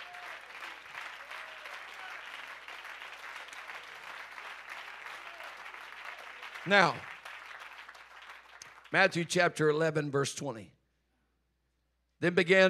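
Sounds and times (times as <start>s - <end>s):
crowd clapping: 0.0s - 9.3s
speech: 6.6s - 7.1s, 8.9s - 10.8s, 12.2s - 12.6s.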